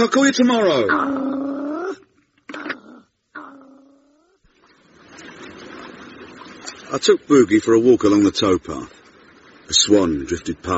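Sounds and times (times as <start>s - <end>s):
speech: 0.0s - 2.0s, 6.9s - 9.0s, 9.7s - 10.7s
animal growling in tonal yowls: 0.8s - 4.4s.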